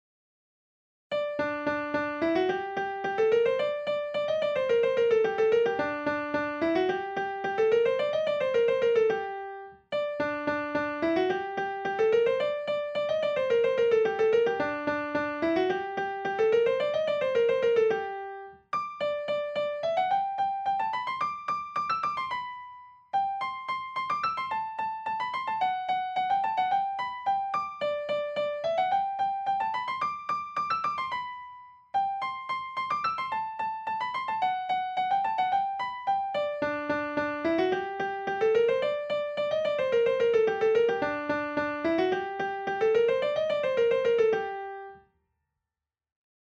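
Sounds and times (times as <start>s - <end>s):
anglaise piano piece fragment: 1.1s - 45.1s.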